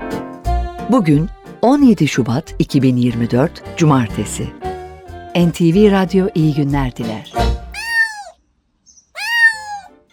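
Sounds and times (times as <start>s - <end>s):
speech: 0.9s - 4.6s, 5.3s - 7.6s
cat meowing: 7.8s - 8.4s, 9.2s - 10.0s.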